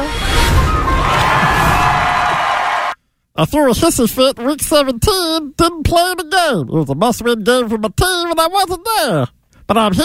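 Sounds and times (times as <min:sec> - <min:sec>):
large crowd cheering: 0:00.2 - 0:03.0
whoops and shouts: 0:00.7 - 0:03.0
speech: 0:03.4 - 0:10.0.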